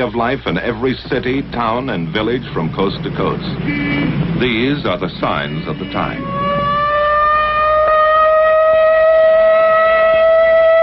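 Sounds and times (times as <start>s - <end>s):
speech: 0.0s - 6.6s
civil defense air raid siren wailing in a practice exercise: 5.2s - 10.8s.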